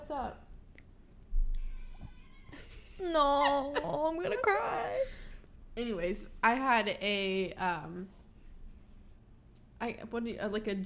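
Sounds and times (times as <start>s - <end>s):
speech: 0.1s - 0.5s, 3.0s - 5.2s, 5.8s - 8.2s, 9.8s - 10.8s
cat meowing: 1.6s - 2.8s.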